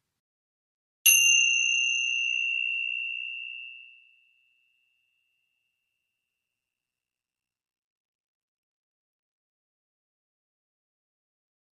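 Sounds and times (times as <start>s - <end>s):
meditation bell ringing: 1.1s - 6.6s.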